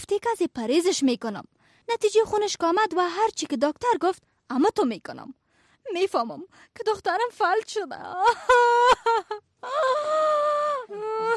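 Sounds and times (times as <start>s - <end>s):
speech: 0.1s - 10.2s
woman crying in wavering wails and sobs: 8.0s - 11.3s.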